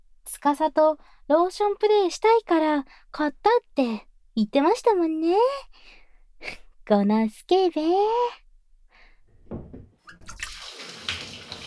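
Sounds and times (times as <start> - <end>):
speech: 0.4 - 8.4
soft knocks: 9.4 - 10.0
shower spray of running water: 10.3 - 11.6.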